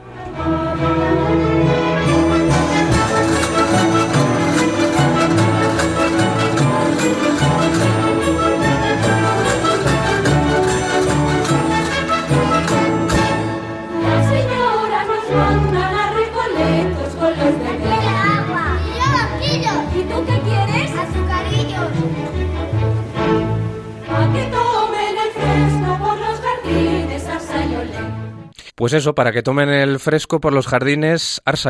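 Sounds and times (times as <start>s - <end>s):
full orchestra playing: 0.0s - 28.5s
chorus of children and nannies singing a bright bouncy zarzuela tune: 13.9s - 18.8s, 19.8s - 21.2s, 24.0s - 28.3s
speech: 28.9s - 31.6s.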